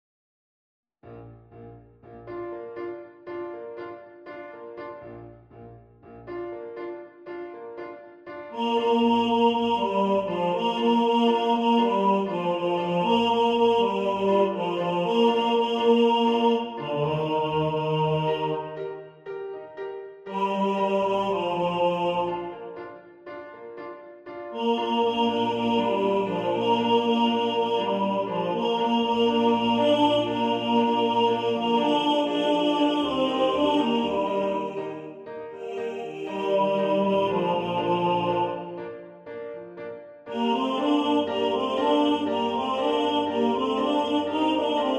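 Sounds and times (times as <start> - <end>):
tenor voice singing in the foreground: 8.5 - 18.8, 20.3 - 22.8, 24.5 - 38.9, 40.3 - 44.9.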